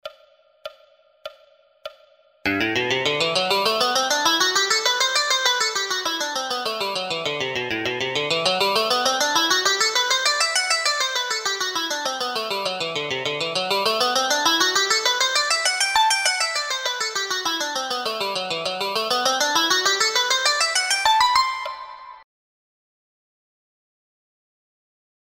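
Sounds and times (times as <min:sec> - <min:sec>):
scales played three notes per string in a loop: 0:02.5 - 0:22.0.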